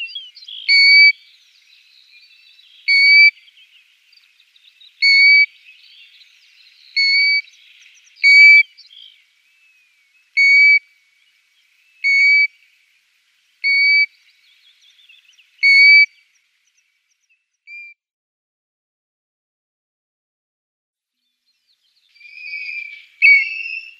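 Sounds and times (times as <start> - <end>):
faint twittering: 0.0 - 18.0, 21.6 - 23.9
European golden plover repeating an even-pitched whistle: 2.8 - 3.3, 5.0 - 5.5, 7.0 - 7.5, 8.2 - 8.7, 10.4 - 10.8, 12.0 - 12.5, 13.6 - 14.1, 15.6 - 16.1, 22.2 - 23.9.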